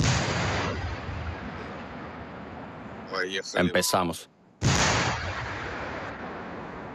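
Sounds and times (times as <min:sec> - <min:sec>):
gunshots in combat: 0:00.0 - 0:02.2, 0:04.6 - 0:06.6
sharp blast: 0:00.0 - 0:02.2, 0:04.6 - 0:06.6
tank cannon fire in combat: 0:00.0 - 0:02.3, 0:04.6 - 0:06.6
speech: 0:03.1 - 0:04.3.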